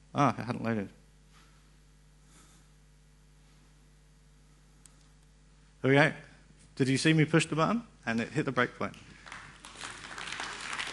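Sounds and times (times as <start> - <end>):
speech: 0.2 - 1.0, 5.8 - 9.0
room full of people applauding: 9.2 - 10.9.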